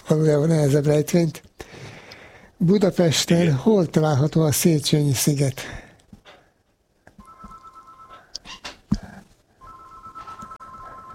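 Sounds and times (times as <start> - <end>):
speech: 0.1 - 1.4, 2.6 - 5.8
telephone ringing in electronic bursts: 7.2 - 8.3, 9.6 - 11.1.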